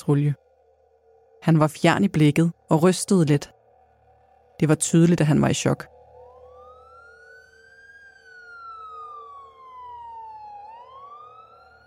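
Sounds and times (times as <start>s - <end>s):
speech: 0.0s - 0.4s, 1.4s - 3.6s, 4.6s - 5.9s
ambulance sirens wailing as ambulances arrive at a house in Kalbakken, Norway: 5.6s - 11.8s.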